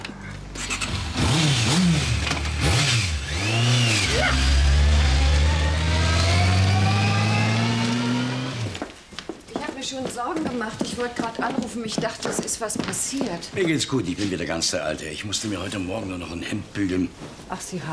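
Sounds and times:
car engine revving as it drives off: 0.6 - 8.8
speech: 10.2 - 17.9.

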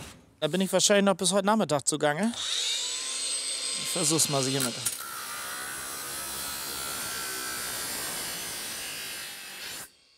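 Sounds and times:
speech: 0.4 - 2.6, 3.9 - 5.0
angle grinder cutting through a metal grate: 2.4 - 10.1.

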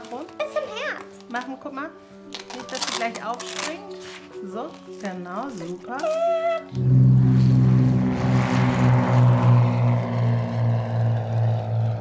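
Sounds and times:
speech: 1.3 - 7.0
small propeller airplane engine droning in flight: 6.6 - 11.9.

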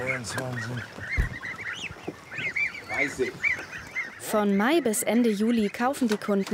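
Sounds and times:
low rustling and bumping: 0.0 - 2.3
young Danish meat geese nearly 14 days old calling: 0.0 - 6.5
speech: 0.1 - 1.4, 3.0 - 6.5.

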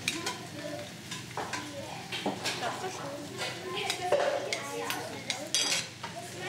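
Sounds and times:
faint sizzle of cooking food: 0.0 - 6.4
spoon clinking and scraping against a metal cooking pot: 5.5 - 5.9.

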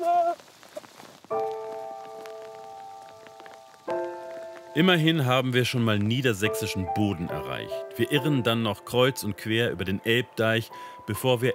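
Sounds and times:
steady rain pattering: 0.0 - 11.5
speech: 4.8 - 11.5.

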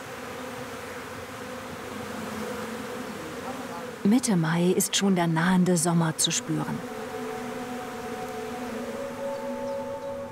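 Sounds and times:
honeybee swarm buzzing at an old log hive in a park: 0.0 - 10.3
speech: 4.1 - 7.0.

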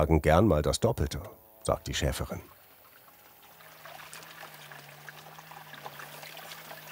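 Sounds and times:
speech: 0.0 - 2.6
water trickling and splashing into a trough for sheep in summer: 2.4 - 6.8.

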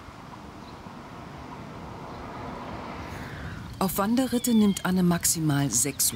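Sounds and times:
roar of traffic on a busy federal road: 0.0 - 6.1
speech: 3.8 - 6.1.

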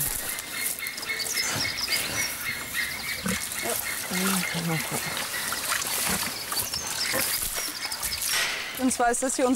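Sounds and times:
pigs grunting and snuffling: 0.0 - 8.8
water gushing from a garden hose: 3.4 - 9.0
speech: 4.2 - 5.2, 8.8 - 9.5.

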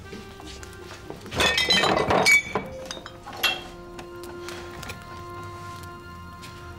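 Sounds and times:
drinking glasses clinking as they are fetched: 1.4 - 3.8.

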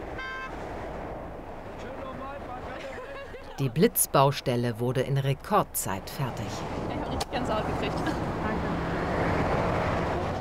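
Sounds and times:
car horn honking: 0.0 - 0.6
motorway traffic roar: 0.0 - 10.3
laughter: 2.6 - 3.9
speech: 3.6 - 6.8, 7.4 - 8.6.

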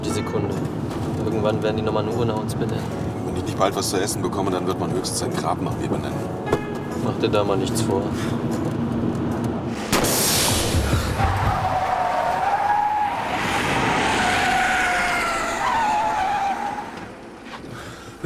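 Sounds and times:
road noise: 0.0 - 18.2
speech: 0.2 - 8.8
car engine: 8.2 - 17.7
car skidding on a wrecked tyre with tyre squeal: 11.0 - 17.6.

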